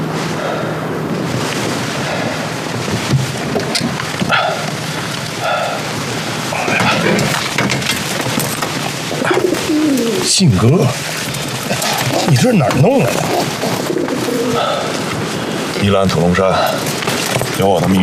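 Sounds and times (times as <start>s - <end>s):
steady noisy background: 0.0s - 18.0s
carrier pigeons cooing in a cage: 4.2s - 7.6s, 8.2s - 15.7s
speech: 10.4s - 11.2s, 12.3s - 13.8s, 15.8s - 16.9s, 17.6s - 18.0s.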